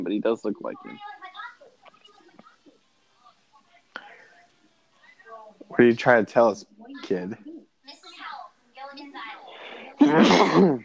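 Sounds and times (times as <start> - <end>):
speech: 0.0 - 1.4, 5.7 - 7.5, 10.0 - 10.8
laughter: 9.6 - 10.8
single loud sneeze: 10.0 - 10.8.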